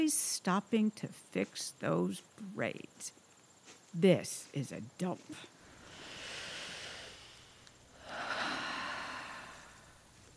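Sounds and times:
speech: 0.0s - 3.2s, 3.9s - 5.5s
person breathing heavily and slowly to calm down: 5.6s - 10.3s.

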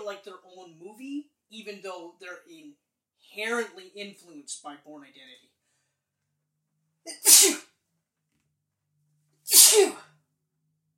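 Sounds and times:
speech: 0.1s - 5.5s, 7.0s - 7.7s, 9.5s - 10.1s
sneezes: 7.1s - 7.7s, 9.5s - 10.1s.

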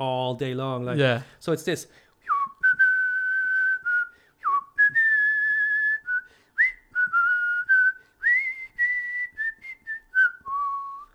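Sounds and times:
speech: 0.0s - 2.0s
man whistling a lilting tune as a phone ringtone: 2.2s - 11.1s.

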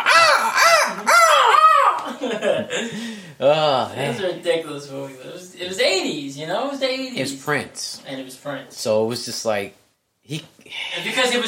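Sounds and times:
voice imitating a bird's squawk: 0.0s - 2.0s
speech: 2.7s - 11.4s.

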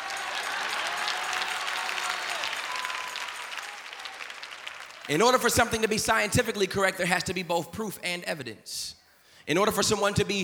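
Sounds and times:
sizable crowd applauding: 0.0s - 5.7s
speech: 5.1s - 10.4s.

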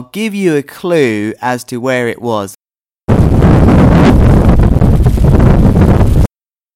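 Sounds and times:
speech: 0.1s - 2.6s
strong wind outdoors in Europe buffeting the microphone: 3.1s - 6.3s.

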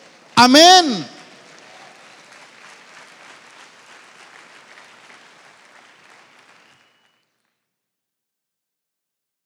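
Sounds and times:
crowd applauding: 0.0s - 7.2s
speech: 0.4s - 1.1s.

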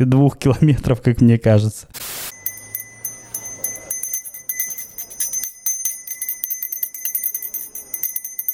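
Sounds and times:
speech: 0.0s - 2.2s
small hand bell rung by a young boy walking: 2.3s - 8.5s.

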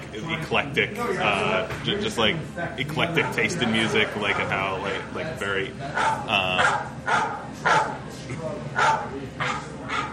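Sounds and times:
faint chatter: 0.0s - 10.1s
speech: 0.2s - 9.5s
dog barking in short sharp yips: 4.2s - 4.6s, 6.0s - 8.0s, 8.8s - 10.1s.

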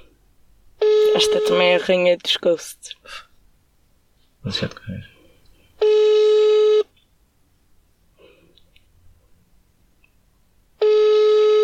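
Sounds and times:
buzzy telephone ringing tone on an unanswered line: 0.8s - 1.6s, 5.8s - 6.9s, 10.8s - 11.6s
speech: 1.2s - 3.3s, 4.4s - 5.1s.

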